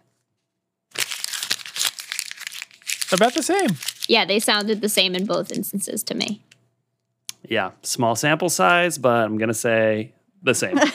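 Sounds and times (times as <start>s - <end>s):
real paper banknote being crumpled: 0.9s - 5.8s
speech: 3.1s - 6.5s, 7.5s - 10.9s.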